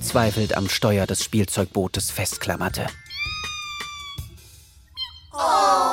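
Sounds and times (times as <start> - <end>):
speech: 0.1 - 3.0
small distressed kitten meowing pitifully: 3.1 - 4.3.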